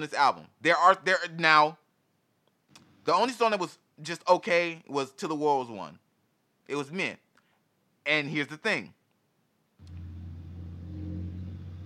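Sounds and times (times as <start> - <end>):
speech: 0.0 - 1.8, 3.1 - 6.0, 6.7 - 7.2, 8.0 - 9.0
car engine rumbling as car passes by: 9.8 - 11.8.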